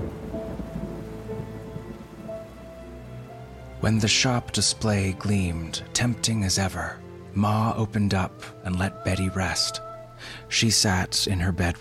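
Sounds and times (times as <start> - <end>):
deep continuous rumble of thunder: 0.0 - 3.5
steady rain pouring: 0.0 - 11.7
speech: 3.8 - 11.7.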